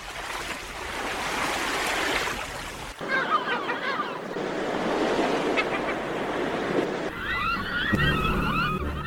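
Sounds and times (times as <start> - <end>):
sea waves breaking against rocky cliffs: 0.0 - 7.4
birds calling over the surf: 3.0 - 9.0.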